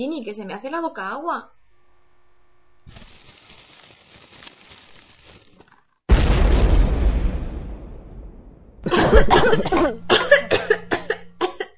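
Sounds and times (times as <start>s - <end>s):
speech: 0.0s - 1.6s, 9.1s - 10.2s
exploding chocolate bomb boom: 6.1s - 9.4s.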